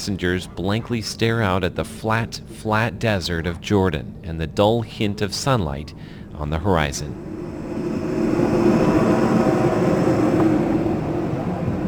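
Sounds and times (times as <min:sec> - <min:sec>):
speech: 0:00.0 - 0:07.3
airport bus engine drone heard from inside the cabin on the tarmac: 0:07.0 - 0:11.8.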